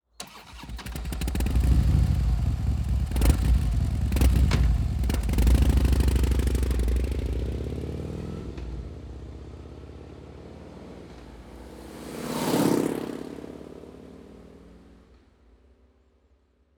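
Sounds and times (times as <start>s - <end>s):
V-twin motorcycle exhaust with closed strike: 0.9s - 10.1s.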